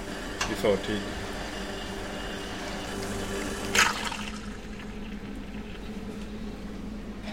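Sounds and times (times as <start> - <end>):
espresso machine humming while brewing two espresso shots: 0.0 - 7.2
speech: 0.5 - 1.3
espresso trickling and dribbling into a cup: 3.7 - 6.2.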